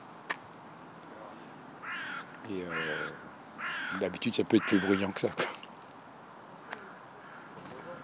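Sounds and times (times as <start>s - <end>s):
carrion crow cawing: 1.8s - 5.3s, 6.6s - 7.7s
speech: 2.5s - 5.5s.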